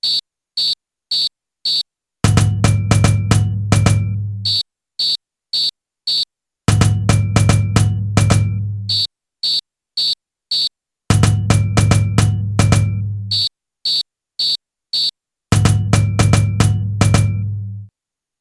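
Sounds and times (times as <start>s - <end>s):
ijexa samba percussion break: 2.2s - 4.6s, 6.7s - 9.1s, 11.1s - 13.5s, 15.5s - 17.5s.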